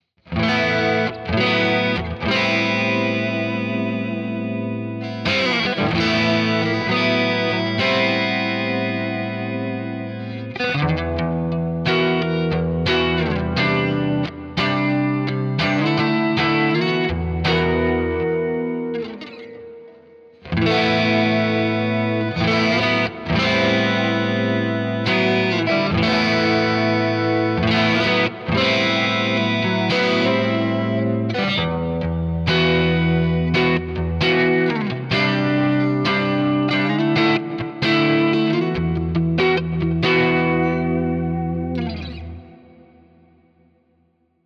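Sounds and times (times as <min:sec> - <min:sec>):
clean guitar amplifier tone in enhance mode: 0:00.3 - 0:44.4.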